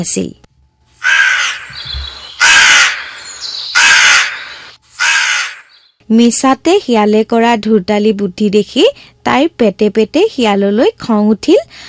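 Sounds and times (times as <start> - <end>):
speech: 0.0 - 0.4, 6.1 - 11.8
crow cawing: 1.0 - 5.9.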